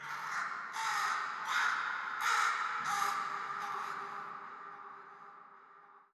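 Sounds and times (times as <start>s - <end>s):
crow calling: 0.0s - 4.4s.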